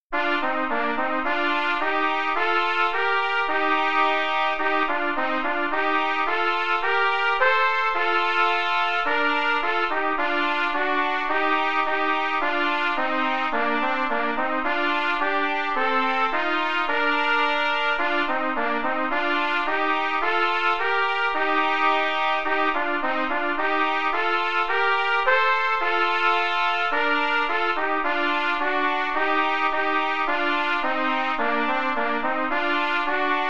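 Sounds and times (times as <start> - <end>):
trumpet duet: 0.1 - 33.4.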